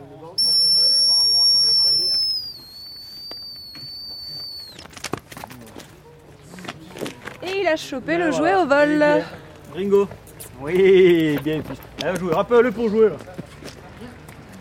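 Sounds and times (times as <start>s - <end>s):
dog handler blowing a loud shrill recall whistle during dog training: 0.4s - 4.9s
faint outdoor rustling: 1.6s - 14.6s
speech: 7.6s - 13.3s.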